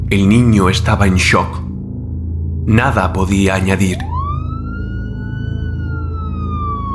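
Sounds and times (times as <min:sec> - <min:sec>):
speech: 0:00.1 - 0:01.7, 0:02.7 - 0:04.1
distant police siren wailing: 0:03.9 - 0:06.9.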